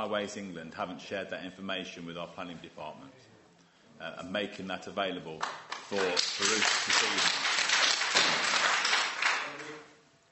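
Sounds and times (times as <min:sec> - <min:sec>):
speech: 0:00.0 - 0:03.3, 0:04.0 - 0:07.4
audience clapping: 0:05.4 - 0:09.9.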